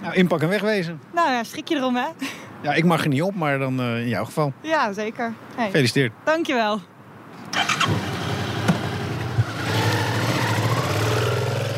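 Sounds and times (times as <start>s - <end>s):
speech: 0.0s - 8.0s
motorcycle engine starting and revving as a woman rides it away: 7.6s - 11.7s.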